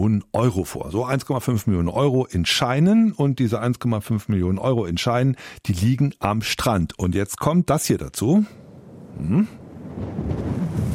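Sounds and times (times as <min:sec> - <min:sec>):
speech: 0:00.0 - 0:08.6, 0:09.2 - 0:10.5
strong wind blowing on a beach: 0:08.5 - 0:10.9.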